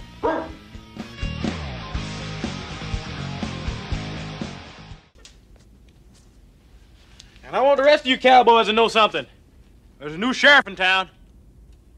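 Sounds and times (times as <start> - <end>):
music: 0.0 - 5.2
dog barking: 0.2 - 0.6
speech: 7.5 - 9.4, 10.0 - 11.2.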